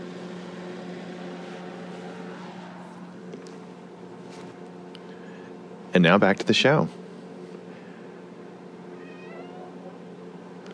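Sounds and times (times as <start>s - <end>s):
steady hum: 0.0s - 10.7s
speech: 6.0s - 7.0s
cat meowing in drawn-out wavering cries: 9.0s - 10.0s.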